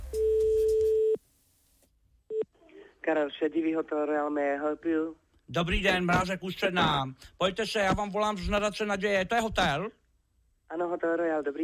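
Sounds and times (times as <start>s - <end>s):
telephone ringing tone on a call to a hotel: 0.1s - 1.2s
speech: 3.1s - 10.0s, 10.7s - 11.6s.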